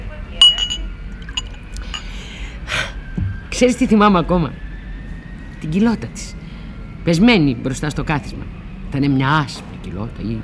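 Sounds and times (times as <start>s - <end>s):
low hum: 0.0s - 10.4s
drink poured into a glass trickling: 0.4s - 2.2s
glass clinking: 0.4s - 2.2s
speech: 3.5s - 4.6s, 5.6s - 6.4s, 7.1s - 10.4s.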